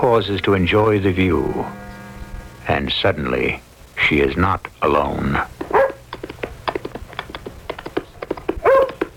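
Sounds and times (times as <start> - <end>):
speech: 0.0 - 1.9, 2.6 - 5.6
dog huffing and yipping: 5.6 - 6.0, 8.6 - 9.0.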